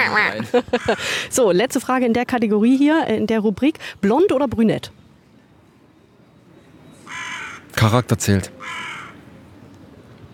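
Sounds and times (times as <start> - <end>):
laughter: 0.0 - 1.1
speech: 0.0 - 5.0, 7.8 - 8.9
crow cawing overhead: 7.0 - 7.8, 8.6 - 9.2.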